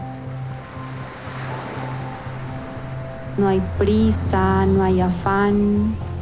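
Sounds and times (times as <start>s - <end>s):
ocean waves breaking on the shore: 0.0s - 6.1s
low rhythmically pulsing hum: 1.5s - 6.1s
speech: 3.4s - 6.1s.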